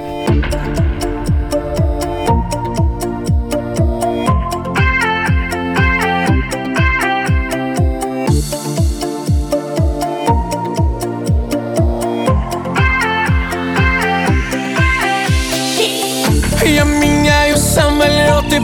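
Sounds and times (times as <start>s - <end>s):
rising synth sweeps: 0.0s - 4.8s
instrumental pop intro with driving beat, layered synths and bass: 0.0s - 18.6s.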